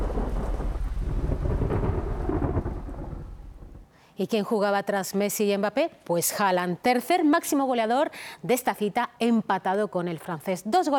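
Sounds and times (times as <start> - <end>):
heavy rain: 0.0 - 3.8
deep thunder rumbling: 0.0 - 3.9
speech: 4.2 - 10.9.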